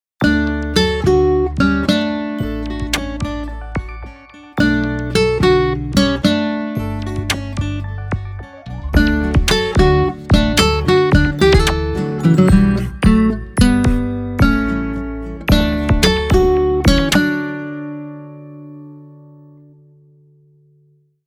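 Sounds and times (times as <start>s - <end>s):
elegant guitar phone ringtone: 0.2s - 19.9s.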